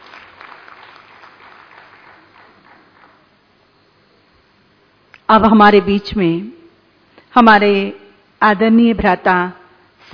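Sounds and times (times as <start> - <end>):
audience applause: 0.0 - 3.5
speech: 5.3 - 6.6, 7.4 - 10.1.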